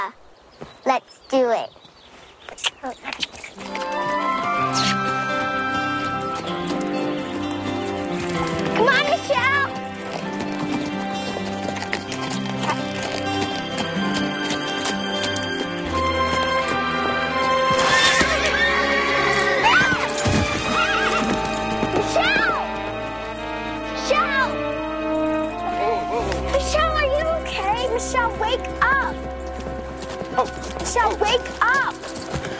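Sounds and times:
speech: 0:00.0 - 0:00.2, 0:00.8 - 0:01.8, 0:02.5 - 0:04.4
ridden horse galloping with clip-clopping hooves: 0:02.9 - 0:32.5
horse whinnying: 0:03.8 - 0:06.6, 0:16.8 - 0:22.8.

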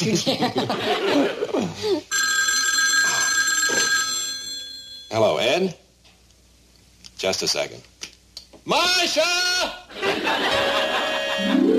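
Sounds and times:
laughter: 0:00.0 - 0:02.0, 0:09.9 - 0:11.7
speech: 0:00.0 - 0:02.2, 0:05.1 - 0:05.8, 0:07.2 - 0:07.9, 0:08.7 - 0:11.6
telephone bell ringing: 0:02.1 - 0:05.1, 0:10.9 - 0:11.7.

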